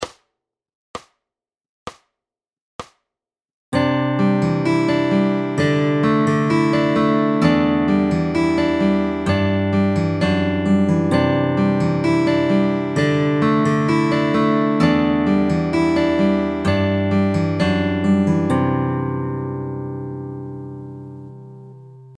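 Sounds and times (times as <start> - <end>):
fingerstyle guitar chords: 3.8 - 22.1.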